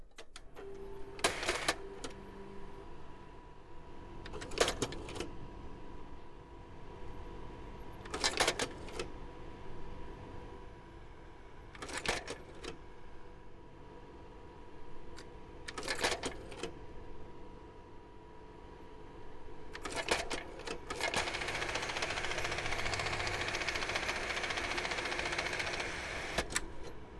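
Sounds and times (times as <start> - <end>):
Kodak Ektapro 5000 slide projector: 0.5 - 2.5, 4.2 - 5.4, 8.0 - 9.1, 11.8 - 12.8, 15.2 - 16.8, 19.7 - 27.0.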